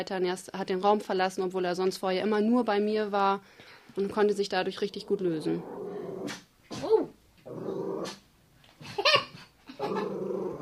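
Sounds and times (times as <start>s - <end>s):
speech: 0.0s - 6.4s
dog growling: 5.0s - 8.2s, 9.7s - 10.6s.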